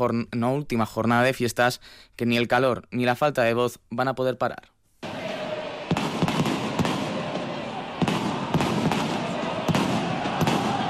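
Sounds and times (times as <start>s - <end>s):
speech: 0.0s - 4.7s
crowd noise: 5.0s - 10.8s
fireworks exploding: 5.0s - 10.8s.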